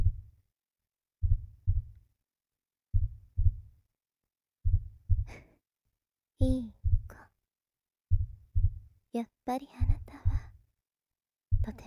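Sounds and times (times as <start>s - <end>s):
slow heartbeat: 0.0s - 0.3s, 1.2s - 2.0s, 2.9s - 3.7s, 4.6s - 5.5s, 6.4s - 7.2s, 8.1s - 8.9s, 9.8s - 10.6s, 11.5s - 11.8s
speech: 9.2s - 10.0s.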